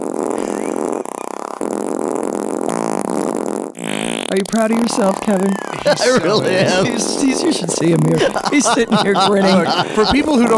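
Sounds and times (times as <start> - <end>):
fart recording stretched by audio editing, warped and buzzy: 0.0 - 4.6
speech: 4.3 - 10.5
laughter: 5.6 - 10.5.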